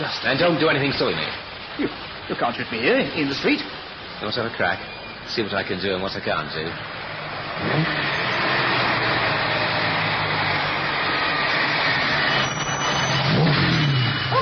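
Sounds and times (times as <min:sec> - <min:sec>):
speech: 0:00.1 - 0:07.0, 0:07.6 - 0:08.2
new car engine revving and pulling away: 0:06.7 - 0:14.4.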